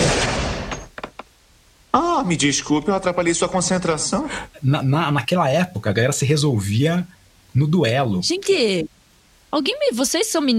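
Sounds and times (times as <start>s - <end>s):
gunshot sound effect for a shot fired into a man's chest: 0.0s - 0.9s
speech: 2.2s - 8.9s, 9.5s - 10.5s.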